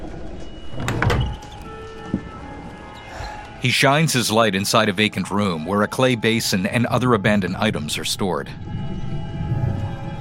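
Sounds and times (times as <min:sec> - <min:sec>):
upstairs door creaking open: 0:00.0 - 0:03.4
speech: 0:03.6 - 0:08.8.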